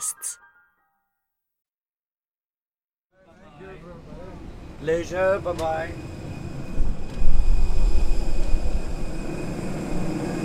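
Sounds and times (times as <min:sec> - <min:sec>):
speech: 0:04.8 - 0:06.1
low rumble of jet engine noise in an airplane cabin arriving in Namibia: 0:05.9 - 0:10.4.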